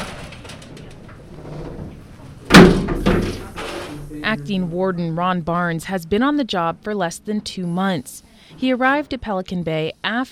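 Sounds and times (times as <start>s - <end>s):
low noise: 0.5s - 10.3s
heavy clank of a prison door closing: 2.5s - 4.0s
heavy prison gate slamming: 2.5s - 4.1s
speech: 4.3s - 10.3s.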